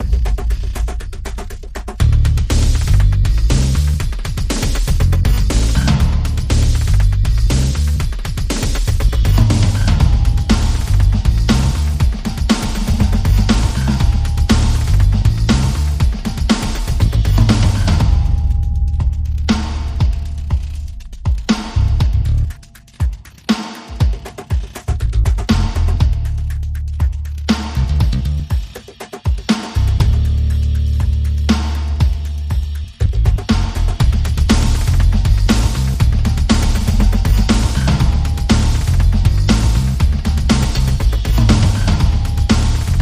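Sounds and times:
electronic pulses: 0:00.0 - 0:23.3, 0:33.1 - 0:43.0
bass percussion: 0:00.0 - 0:43.0.

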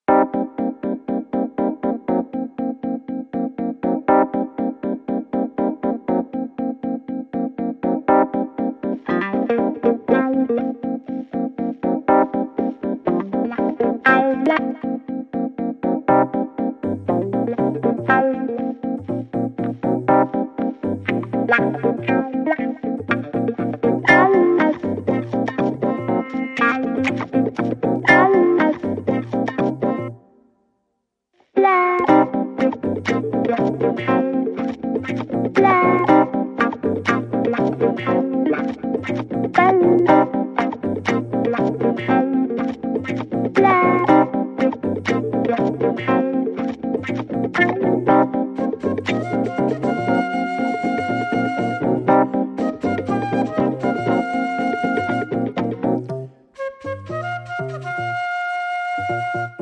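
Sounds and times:
guitar: 0:00.0 - 0:30.3, 0:31.6 - 0:59.6
keyboard: 0:00.0 - 0:30.5, 0:31.6 - 0:59.6
flute: 0:48.5 - 0:55.8, 0:56.5 - 0:59.6.

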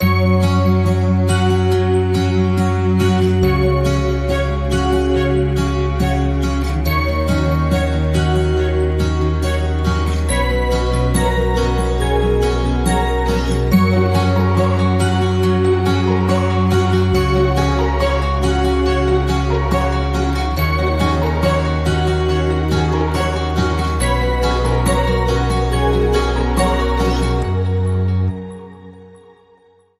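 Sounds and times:
joyful acoustic Christmas music without drums: 0:00.0 - 0:29.8.

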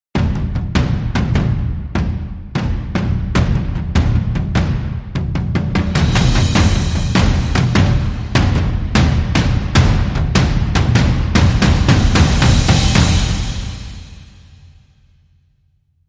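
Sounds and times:
dramatic percussion sting: 0:00.2 - 0:14.8.

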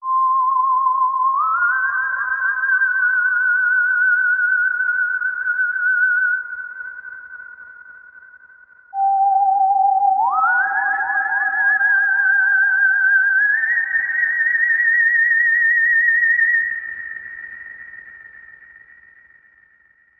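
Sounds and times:
outer space signal: 0:00.0 - 0:20.1.

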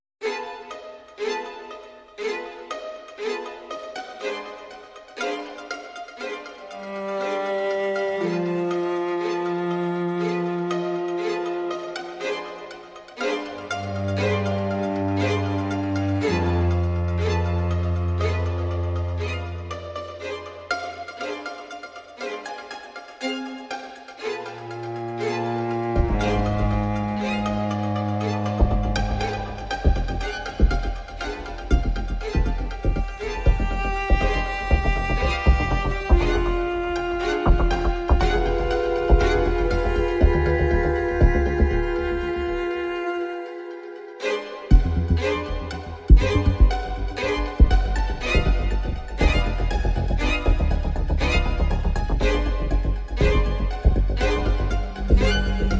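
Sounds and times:
aggressive strings: 0:00.2 - 0:55.7.

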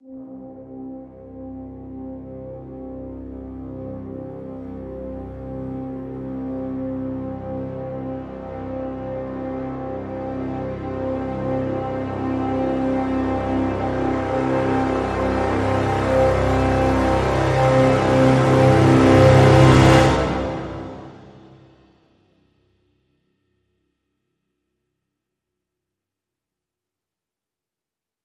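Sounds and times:
full brass swell in C: 0:00.1 - 0:21.9.

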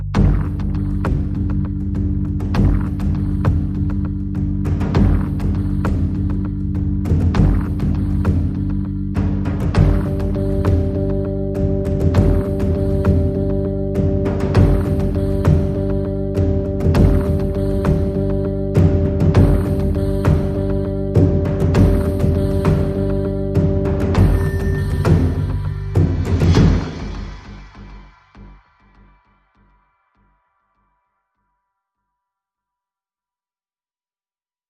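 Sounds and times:
rhythm track: 0:00.2 - 0:27.9.

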